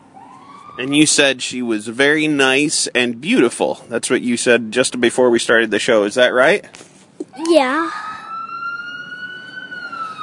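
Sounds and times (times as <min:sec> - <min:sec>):
ambulance siren passing by: 0:00.0 - 0:01.4, 0:07.9 - 0:10.2
low traffic rumble: 0:00.0 - 0:10.2
speech: 0:00.8 - 0:08.0.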